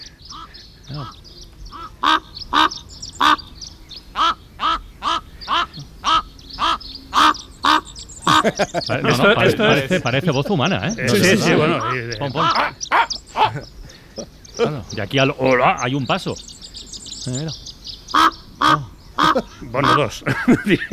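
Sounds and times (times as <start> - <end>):
crow cawing at a mountain lookout above the Caldera de Taburiente: 0.0 - 9.1, 11.1 - 14.7, 18.1 - 20.2
speech: 0.9 - 1.3, 8.4 - 12.9, 13.5 - 16.5, 17.2 - 17.6, 19.7 - 20.9
laughter: 8.2 - 15.0, 19.2 - 20.9.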